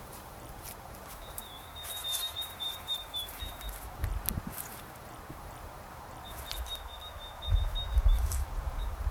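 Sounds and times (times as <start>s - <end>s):
soft bird chirps in a calm meadow: 1.1s - 3.9s, 6.2s - 9.0s.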